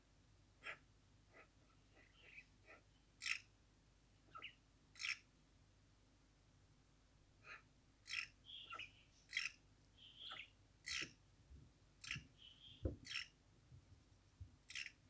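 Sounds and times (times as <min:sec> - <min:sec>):
magpies calling: 0:00.6 - 0:03.5, 0:04.3 - 0:05.2, 0:07.5 - 0:11.2, 0:12.0 - 0:13.3, 0:14.7 - 0:15.0.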